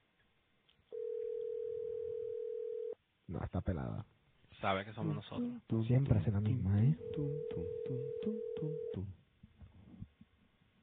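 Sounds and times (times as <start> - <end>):
ringing tone of an outgoing telephone call: 0.9 - 3.0, 7.0 - 9.1
speech: 3.3 - 9.2.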